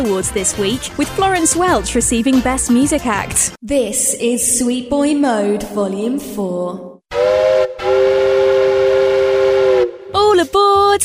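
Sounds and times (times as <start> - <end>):
speech: 0.0 - 6.9
loud steam whistle from a miniature train: 7.1 - 10.2.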